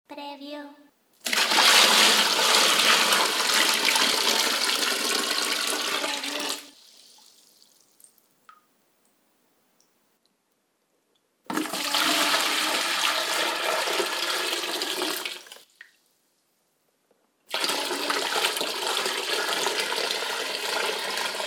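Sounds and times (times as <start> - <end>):
water pouring: 1.2 - 8.6, 11.5 - 16.0, 17.5 - 21.4.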